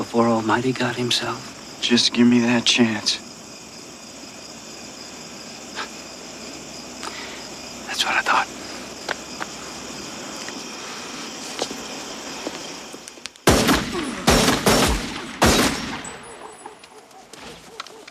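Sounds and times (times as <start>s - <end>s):
low ambient background: 0.0s - 17.3s
speech: 0.2s - 3.3s
gunshots in a film scene: 13.4s - 16.4s.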